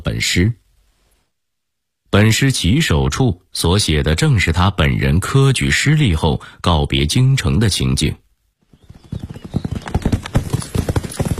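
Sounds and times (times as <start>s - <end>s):
speech: 0.1s - 0.6s, 2.1s - 8.2s
horse hooves clip-clopping as a rider travels into open countryside: 8.7s - 11.3s.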